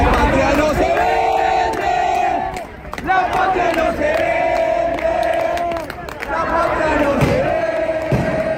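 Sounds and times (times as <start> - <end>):
constant roar of many people: 0.0 - 8.5
large protest crowd chanting in unison in the rain in Buenos Aires: 0.0 - 8.5.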